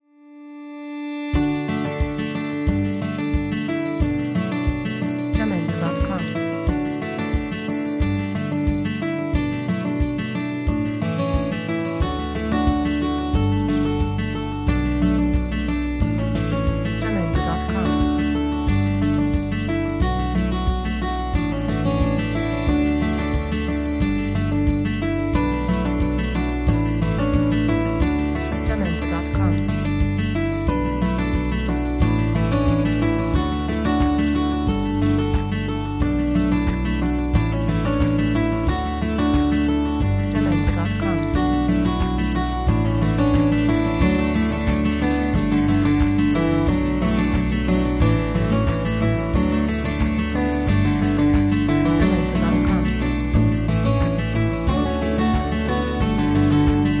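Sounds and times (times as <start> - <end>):
calm background acoustic guitar: 0.0 - 56.9.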